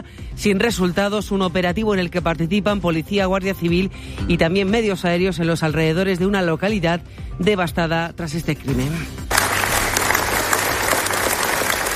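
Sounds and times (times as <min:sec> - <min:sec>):
speech: 0:00.4 - 0:09.3
large crowd applauding: 0:09.3 - 0:11.9.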